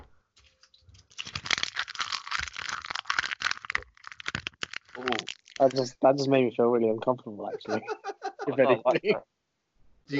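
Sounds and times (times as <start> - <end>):
crisp packet crinkling while being handled: 0.4 - 6.0
speech: 5.0 - 9.3
laughter: 7.4 - 9.2.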